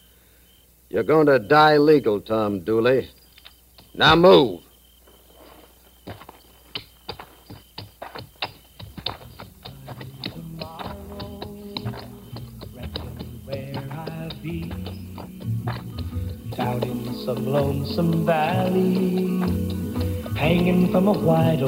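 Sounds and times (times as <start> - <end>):
speech: 0.9 - 3.2, 4.0 - 4.7, 17.5 - 19.6, 20.4 - 21.6
horse hooves clip-clopping as it walks: 5.1 - 21.6.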